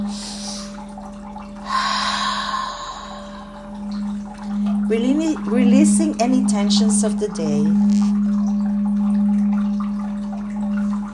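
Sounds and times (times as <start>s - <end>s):
steady low electrical hum: 0.0s - 11.1s
slow deep breath during a guided relaxation: 1.6s - 3.8s
speech: 4.9s - 8.2s.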